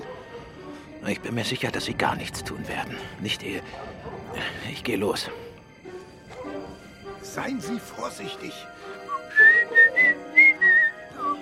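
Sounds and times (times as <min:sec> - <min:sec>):
speech: 0:01.0 - 0:05.4, 0:07.2 - 0:09.8
man whistling a short bright tune: 0:09.0 - 0:11.3.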